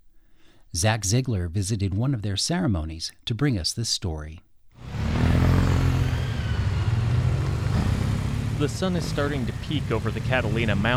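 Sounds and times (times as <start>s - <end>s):
speech: 0.7s - 4.5s, 8.6s - 10.9s
several motorcycle engines rumbling and idling in a parking lot: 4.8s - 10.9s.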